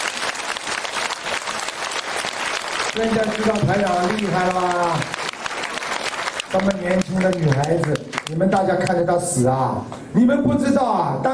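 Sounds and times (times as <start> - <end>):
audience applause: 0.0 - 8.6
speech: 2.9 - 5.2, 6.5 - 11.3.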